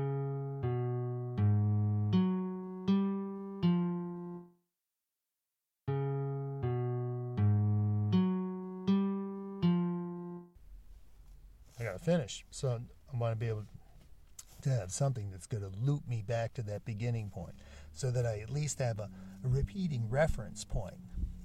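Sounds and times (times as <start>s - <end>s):
six-note melodic figure in a bright electronic tone transposed up a tritone: 0.0s - 4.5s, 5.9s - 10.6s
speech: 12.0s - 13.8s, 14.6s - 21.1s.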